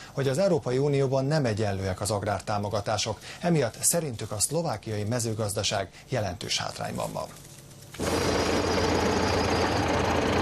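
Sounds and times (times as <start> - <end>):
speech: 0.2 - 9.7
diesel tractor engine running at a farmers' protest in Bratislava, Slovakia: 8.0 - 10.4.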